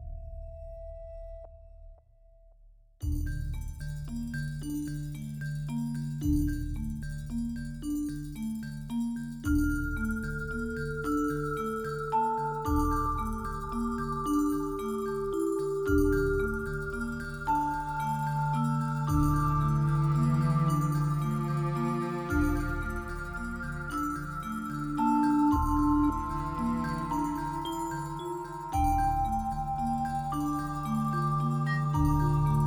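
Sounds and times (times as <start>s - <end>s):
vibraphone passage: 3.1s - 32.6s.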